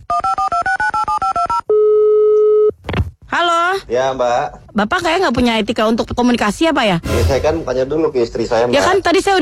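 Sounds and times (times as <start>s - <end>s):
telephone dial tone: 0.1s - 2.7s
speech: 3.9s - 9.3s.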